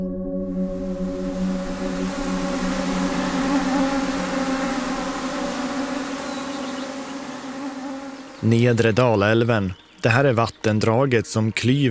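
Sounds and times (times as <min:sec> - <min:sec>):
swarm of mosquitoes buzzing outdoors in Nedre Dalälven Sweden: 0:00.6 - 0:10.0
speech: 0:08.4 - 0:11.9.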